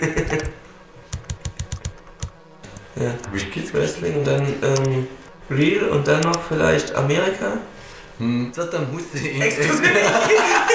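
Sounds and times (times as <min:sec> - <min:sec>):
typing on a computer keyboard: 0:01.1 - 0:02.3
speech: 0:03.0 - 0:10.7
laughter: 0:09.4 - 0:10.7.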